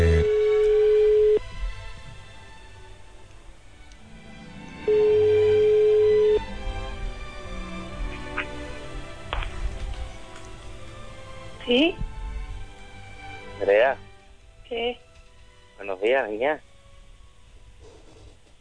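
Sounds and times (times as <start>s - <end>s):
ringback tone of a call to a mobile phone: 0.0s - 1.4s, 4.9s - 6.5s
hum: 0.0s - 18.6s
speech: 16.2s - 16.6s.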